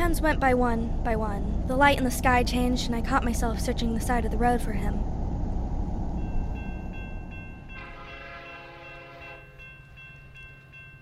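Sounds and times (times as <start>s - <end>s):
train rumbling past: 0.0s - 11.0s
speech: 0.1s - 5.1s
train horn: 7.8s - 9.6s.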